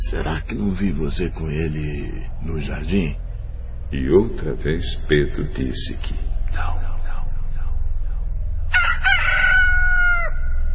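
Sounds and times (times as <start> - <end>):
steady low rumbling background: 0.0 - 10.7
speech: 0.1 - 3.3, 3.9 - 6.8
rooster crowing: 8.7 - 10.7.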